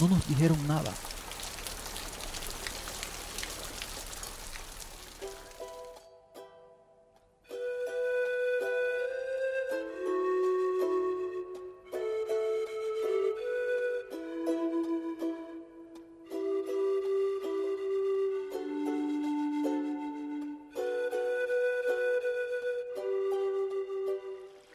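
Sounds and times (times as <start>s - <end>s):
speech: 0.0s - 1.2s
steady dense afternoon rain: 0.0s - 6.0s
soft sustained music with held tones: 5.2s - 24.7s.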